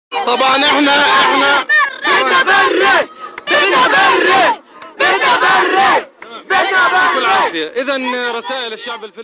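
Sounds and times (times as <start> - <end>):
crowd of hundreds of young people chanting in unison in Gaza: 0.1 - 8.6
speech: 0.2 - 9.2.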